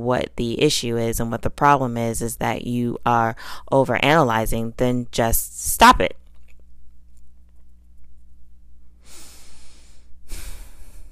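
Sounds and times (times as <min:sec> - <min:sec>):
speech: 0:00.0 - 0:06.2
low steady hum: 0:00.0 - 0:11.1
deep breath: 0:09.0 - 0:11.1.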